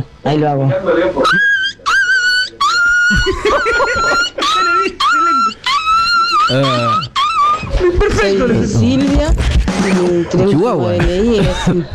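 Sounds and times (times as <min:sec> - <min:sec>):
speech: 0:00.0 - 0:01.5, 0:03.2 - 0:04.4, 0:06.5 - 0:07.0, 0:07.8 - 0:11.9
laughter: 0:00.7 - 0:11.9
person imitating a yelping, whimpering dog: 0:01.2 - 0:08.2.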